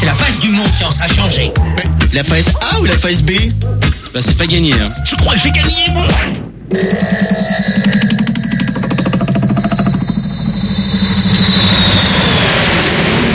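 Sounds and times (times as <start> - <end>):
speech: 0.6 - 7.8
airplane engine drone inside the cabin: 6.5 - 13.3
faint high whine: 9.1 - 13.3.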